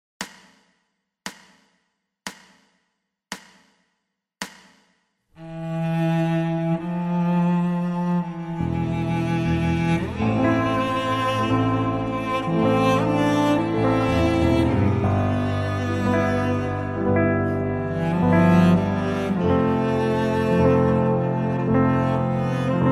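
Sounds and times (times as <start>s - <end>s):
sad cello and piano music: 5.4s - 22.9s.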